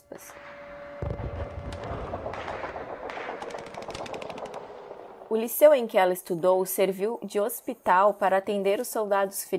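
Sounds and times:
rapid volley of sharp cracking shots: 0:01.0 - 0:05.5
cannon fire in a battle scene: 0:01.0 - 0:05.6
scattered explosions: 0:01.0 - 0:05.9
speech: 0:05.3 - 0:09.5.

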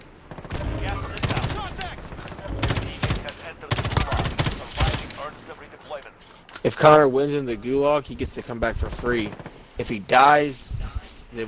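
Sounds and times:
rapid automatic gunfire in a first-person video game: 0:00.3 - 0:05.4
speech: 0:06.6 - 0:11.4.

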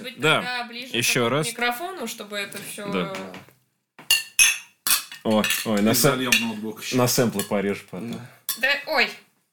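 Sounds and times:
speech: 0:00.1 - 0:03.5, 0:05.2 - 0:09.2
wine glasses clinking in a toast: 0:04.1 - 0:06.6.

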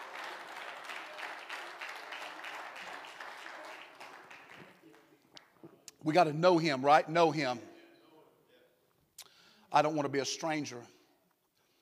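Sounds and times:
congregation clapping hands: 0:00.0 - 0:05.8
speech: 0:06.0 - 0:07.7, 0:09.8 - 0:11.0.

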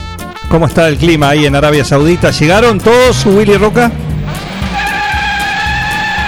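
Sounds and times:
speech: 0:00.5 - 0:04.1
racing engines revving at full throttle: 0:02.7 - 0:06.2.

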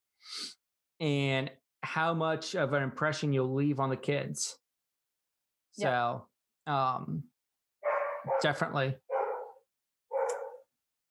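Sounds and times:
speech: 0:01.0 - 0:04.6, 0:05.8 - 0:07.3, 0:08.3 - 0:09.0
dog barking: 0:07.8 - 0:10.7.

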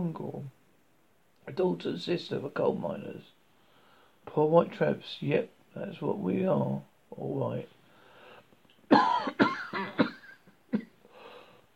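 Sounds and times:
speech: 0:00.0 - 0:00.6, 0:01.5 - 0:03.3, 0:04.2 - 0:07.8
person coughing: 0:08.9 - 0:11.0
breathy wheeze: 0:11.0 - 0:11.7.

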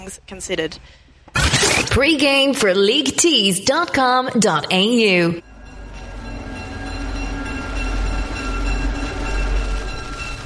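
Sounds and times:
speech: 0:00.0 - 0:05.5
train passing on rails: 0:05.4 - 0:10.4.

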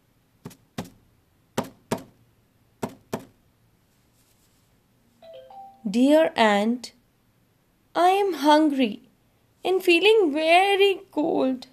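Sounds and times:
sharp knocks on a door: 0:01.6 - 0:02.2, 0:02.8 - 0:03.4
speech: 0:05.8 - 0:07.0, 0:08.0 - 0:09.0, 0:09.6 - 0:11.7.

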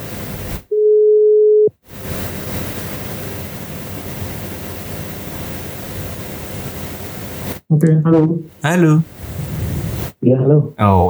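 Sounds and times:
hissing noise: 0:00.0 - 0:00.7, 0:01.9 - 0:07.7, 0:08.5 - 0:10.2, 0:10.8 - 0:11.0
telephone dial tone while a call is being placed: 0:00.8 - 0:01.7
speech: 0:07.7 - 0:09.2, 0:10.2 - 0:11.0.

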